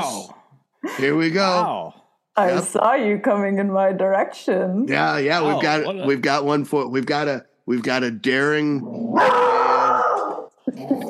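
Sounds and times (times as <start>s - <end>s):
speech: 0.8s - 9.7s
dog growling and snarling: 8.8s - 11.0s.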